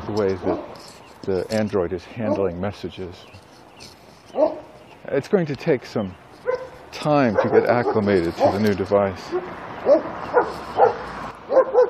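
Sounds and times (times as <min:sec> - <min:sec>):
speech: 0:00.1 - 0:06.2, 0:07.0 - 0:11.8
dogs barking: 0:00.4 - 0:00.8, 0:02.2 - 0:02.6, 0:04.3 - 0:04.8, 0:06.4 - 0:11.8.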